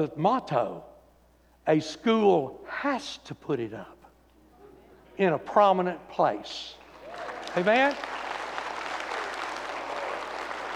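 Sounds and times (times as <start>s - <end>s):
speech: 0.0s - 0.9s, 1.6s - 4.0s, 5.2s - 8.2s
gathered crowd applauding: 6.8s - 10.7s.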